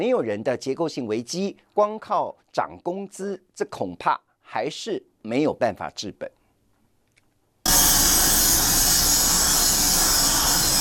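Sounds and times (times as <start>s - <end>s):
speech: 0.0s - 6.4s
machine grinding on a factory line: 7.7s - 10.7s.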